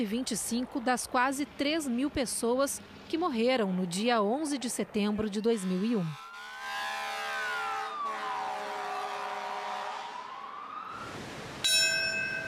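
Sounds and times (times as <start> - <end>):
speech: 0.0 - 6.2
sirens wailing: 5.0 - 11.4
memorial bell tolling: 11.6 - 12.4.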